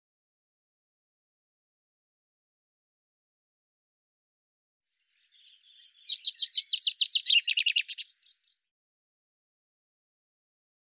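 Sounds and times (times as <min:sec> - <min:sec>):
common chaffinch song: 0:04.9 - 0:08.7.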